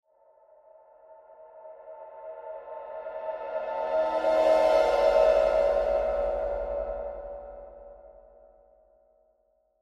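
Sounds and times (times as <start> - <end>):
ghostly horror cymbal swell: 2.0 - 8.2.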